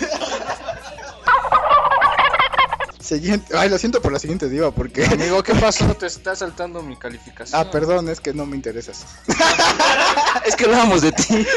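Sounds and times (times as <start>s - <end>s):
laughter: 0.0s - 3.0s, 5.0s - 5.7s, 9.3s - 11.5s
turkey gobbling: 1.2s - 3.0s
speech: 3.1s - 11.5s.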